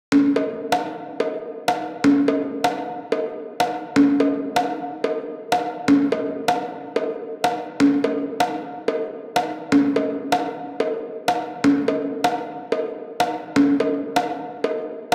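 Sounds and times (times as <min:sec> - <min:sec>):
conga drums: 0:00.1 - 0:15.1.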